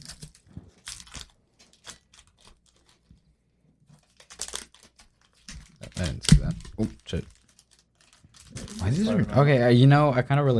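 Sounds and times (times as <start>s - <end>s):
trading card packaging torn open with crinkling: 0.0s - 3.1s, 4.0s - 9.1s
speech: 6.0s - 7.4s, 8.8s - 10.5s.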